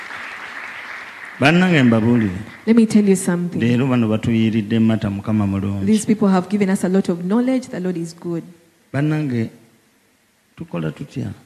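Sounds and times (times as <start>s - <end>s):
crowd applauding: 0.0s - 2.8s
speech: 1.4s - 9.6s, 10.6s - 11.4s.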